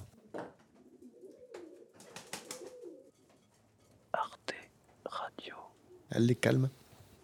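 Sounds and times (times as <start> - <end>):
pigeons cooing: 0.0 - 3.2, 5.7 - 6.1
speech: 5.4 - 6.8.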